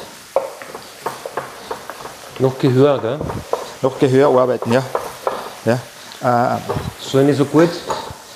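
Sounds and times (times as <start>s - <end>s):
onions sizzling in a frying pan: 0.0s - 8.3s
spoon scraping and clacking while stirring onions in a frying pan: 0.0s - 8.3s
speech: 2.4s - 5.0s, 5.6s - 7.9s.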